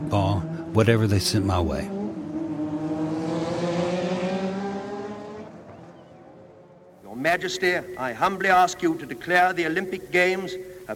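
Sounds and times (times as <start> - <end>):
race car engines roaring past: 0.0 - 9.7
speech: 0.1 - 2.0, 7.3 - 10.9
constant broadband noise: 7.0 - 10.9.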